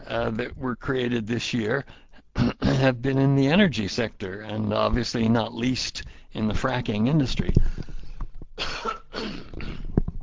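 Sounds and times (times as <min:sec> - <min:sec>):
speech: 0:00.1 - 0:07.9
man with a scratchy voice coughing: 0:02.3 - 0:03.0, 0:08.6 - 0:10.0
soft throat and breath noises: 0:07.5 - 0:10.2.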